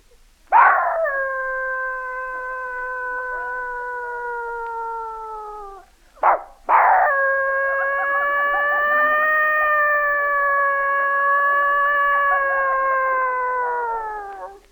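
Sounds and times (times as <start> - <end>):
dogs howling: 0.5 - 14.7
dog yelp: 6.2 - 7.2.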